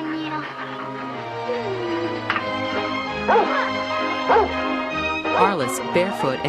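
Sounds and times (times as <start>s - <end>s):
dog whimpering: 0.0s - 4.5s
dog barking and yipping: 3.2s - 4.6s
speech: 3.3s - 3.6s, 5.6s - 6.4s.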